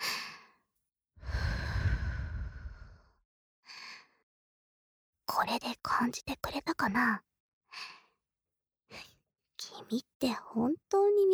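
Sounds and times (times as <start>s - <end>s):
soft close breathing beside the ear: 1.2s - 4.2s, 7.7s - 8.2s
speech: 5.3s - 8.0s, 8.9s - 11.3s.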